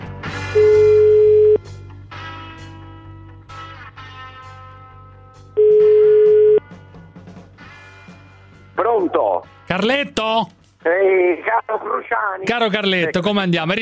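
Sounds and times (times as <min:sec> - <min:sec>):
busy musical backdrop: 0:00.0 - 0:13.8
telephone ringback tone beeps: 0:00.6 - 0:01.6, 0:05.6 - 0:06.6
speech: 0:09.8 - 0:13.8.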